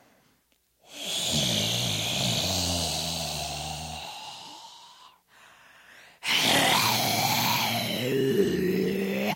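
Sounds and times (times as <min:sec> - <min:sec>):
voice imitating dragon breathing with rasping exhalations: 0:00.8 - 0:05.2, 0:06.1 - 0:09.3.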